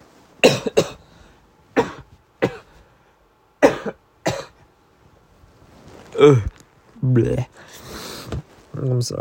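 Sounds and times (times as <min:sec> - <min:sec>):
person coughing: 0:00.4 - 0:01.1, 0:01.8 - 0:02.8, 0:03.6 - 0:04.6
speech: 0:00.6 - 0:00.9, 0:06.2 - 0:07.7, 0:08.8 - 0:09.1.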